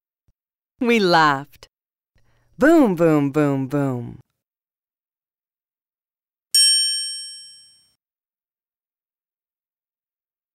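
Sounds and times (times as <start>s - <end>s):
speech: 0.8s - 1.7s, 2.6s - 4.2s
bright high bell ringing: 6.6s - 7.9s.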